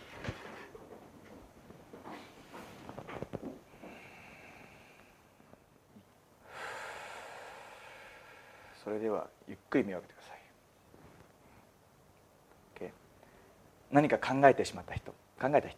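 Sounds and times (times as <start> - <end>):
slow breathing during a guided breathing exercise: 3.7 - 5.7, 6.4 - 8.9
speech: 8.9 - 10.4, 13.9 - 15.7.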